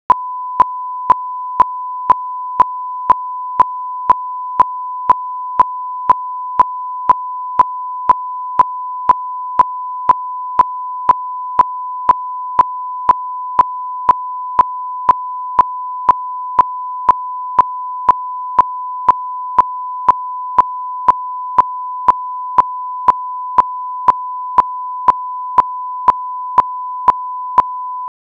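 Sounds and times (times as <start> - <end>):
1001 Hz tone burst: 0.1 - 28.1.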